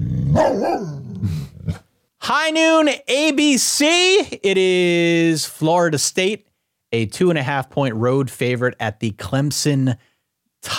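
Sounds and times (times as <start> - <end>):
large dog barking: 0.3 - 1.1
speech: 2.3 - 10.7.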